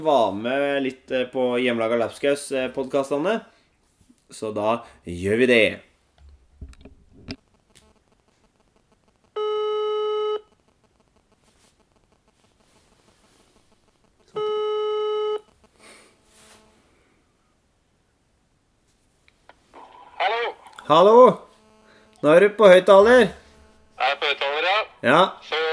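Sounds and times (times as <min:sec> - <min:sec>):
speech: 0:00.0 - 0:03.6, 0:04.3 - 0:05.9, 0:20.9 - 0:21.4, 0:22.2 - 0:23.4, 0:24.0 - 0:25.6
faint clicks: 0:07.3 - 0:09.4, 0:10.4 - 0:12.9
electronic telephone ringback tones while dialing out: 0:09.4 - 0:10.5, 0:14.3 - 0:15.5.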